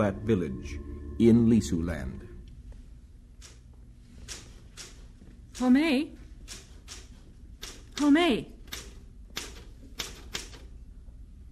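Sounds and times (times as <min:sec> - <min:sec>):
speech: 0:00.0 - 0:02.3, 0:05.6 - 0:06.6, 0:08.0 - 0:08.6
faint room hum: 0:00.0 - 0:11.5
typewriter keystrokes: 0:04.3 - 0:05.0, 0:06.4 - 0:10.7.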